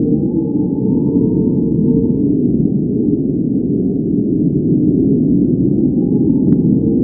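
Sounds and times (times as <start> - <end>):
low wind: 0.0 - 7.0.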